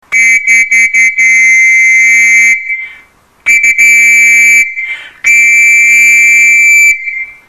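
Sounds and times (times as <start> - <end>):
scout whistle blowing: 0.1 - 7.4.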